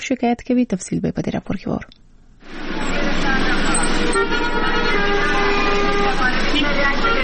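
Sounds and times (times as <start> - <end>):
speech: 0.1 - 3.2
loud continuous vehicle traffic roar in a congested street in Ghazni city: 2.4 - 7.2
overlapping car horn toots in a congested street in Ghazni city: 3.4 - 7.2.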